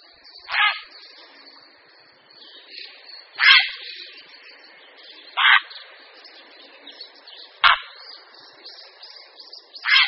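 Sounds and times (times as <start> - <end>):
grey heron harsh rasping squawks: 0.5 - 0.8, 3.4 - 3.8, 5.4 - 5.7, 7.6 - 7.9, 9.8 - 10.0.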